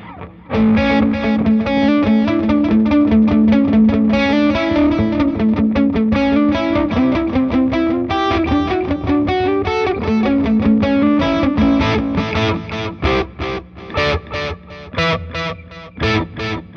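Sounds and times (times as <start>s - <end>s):
distorted electric guitar riff through a delay effect: 0.0s - 16.7s.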